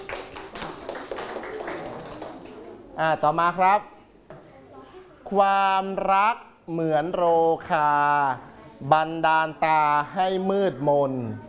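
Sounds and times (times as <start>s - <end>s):
group of students clapping after a correct answer: 0.0s - 2.6s
speech: 3.0s - 3.9s, 5.3s - 11.4s.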